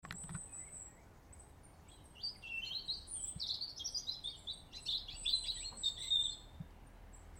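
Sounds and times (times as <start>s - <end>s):
European robin song with high whistle and warbling phrases: 0.1s - 7.3s.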